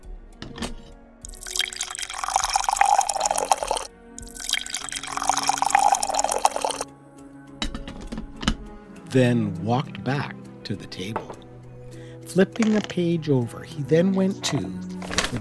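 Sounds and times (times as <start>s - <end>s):
coffee pouring into cups: 1.3s - 6.8s, 14.4s - 15.3s
speech: 9.1s - 11.4s, 12.4s - 15.3s.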